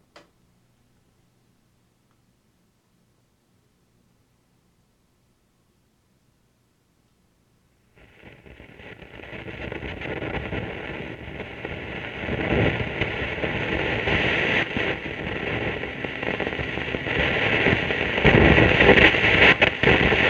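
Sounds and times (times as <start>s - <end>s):
organ noise: 10.4s - 20.2s.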